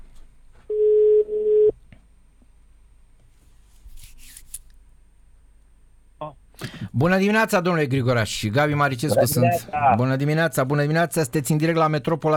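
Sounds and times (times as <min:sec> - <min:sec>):
telephone line tone: 0:00.7 - 0:01.7
speech: 0:07.0 - 0:12.3.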